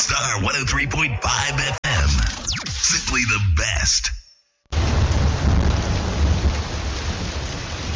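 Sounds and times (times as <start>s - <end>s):
speech: 0.1s - 1.8s, 2.9s - 4.2s
deep thunder rumbling in Greater Accra Ghana: 4.7s - 7.9s
heavy rain pouring in Greater Accra Ghana: 4.7s - 7.9s.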